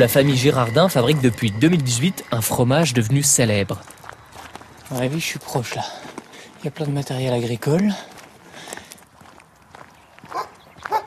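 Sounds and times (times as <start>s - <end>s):
speech: 0.0s - 4.0s, 4.9s - 8.1s
footsteps: 0.0s - 11.0s
outdoor rustling: 0.0s - 11.0s
farm dog barking: 10.3s - 11.0s.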